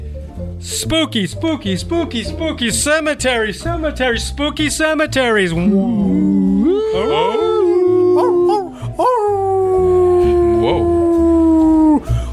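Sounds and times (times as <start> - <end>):
speech: 0.6 - 7.4
dog howling: 5.7 - 12.0.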